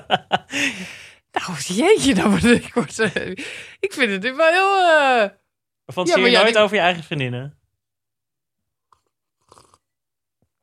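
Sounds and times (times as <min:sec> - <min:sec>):
laughter: 0:00.0 - 0:00.8
speech: 0:00.1 - 0:07.6
person sipping and swallowing water: 0:08.9 - 0:10.0.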